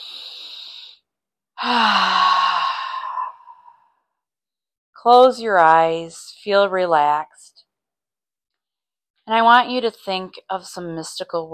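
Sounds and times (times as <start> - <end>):
deep breath during a guided relaxation exercise: 0.0 - 1.0, 1.6 - 4.0
speech: 1.6 - 2.1, 5.0 - 7.5, 9.3 - 11.5.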